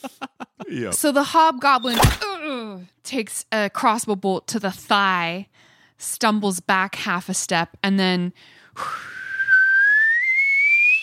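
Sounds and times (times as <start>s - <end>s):
laughter: 0.0s - 0.9s
speech: 0.0s - 9.1s
person whistling imitating a whistled signal with rising pitch: 8.8s - 11.0s.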